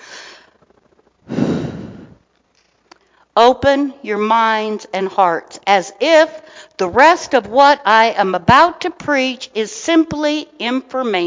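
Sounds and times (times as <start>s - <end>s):
congregation taking a deep breath together during a sermon: 0.0s - 2.2s
speech: 3.4s - 11.2s.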